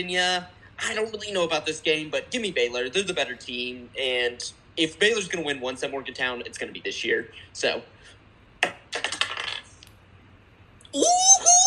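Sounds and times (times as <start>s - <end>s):
speech: 0.0s - 9.0s, 10.9s - 11.4s
dice rolling on a table: 8.6s - 9.8s.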